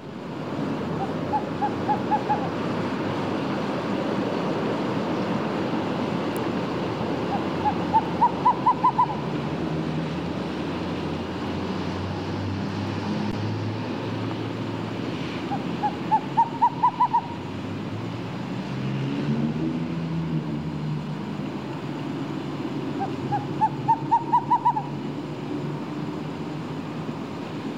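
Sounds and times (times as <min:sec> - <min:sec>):
constant low traffic and engine noise: 0:00.0 - 0:27.7
screech owl hooting: 0:00.9 - 0:02.8, 0:07.0 - 0:09.7, 0:15.5 - 0:17.5, 0:22.9 - 0:25.2.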